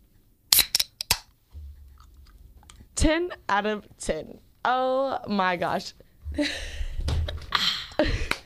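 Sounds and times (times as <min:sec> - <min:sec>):
Red Bull energy drink can cracking open: 0:00.5 - 0:01.3
faint low rumble: 0:01.5 - 0:03.5, 0:06.0 - 0:08.0
speech: 0:03.0 - 0:06.8.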